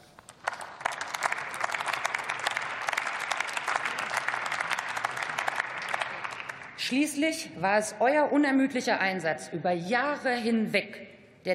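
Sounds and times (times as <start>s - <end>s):
crowd applause for a veterans' movement: 0.0s - 6.8s
speech: 6.9s - 11.5s.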